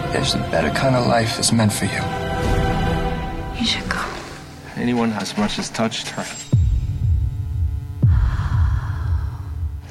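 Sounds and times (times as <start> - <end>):
speech: 0.1 - 2.5, 3.6 - 4.1, 4.8 - 6.5
deep ominous heartbeat thudding: 6.5 - 9.8.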